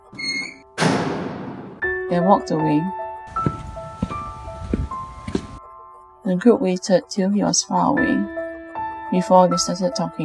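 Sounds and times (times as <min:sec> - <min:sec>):
heavy metal cell door slamming shut: 0:00.0 - 0:01.8
metallic clang: 0:00.7 - 0:01.8
speech: 0:02.1 - 0:03.5, 0:06.3 - 0:08.4, 0:09.1 - 0:10.2.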